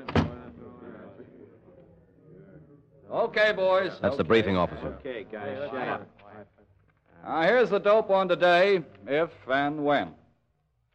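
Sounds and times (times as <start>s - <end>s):
door shutting with a solid thud: 0.0s - 0.5s
faint murmuring voices: 0.0s - 7.7s
speech: 3.1s - 6.5s, 7.2s - 10.2s.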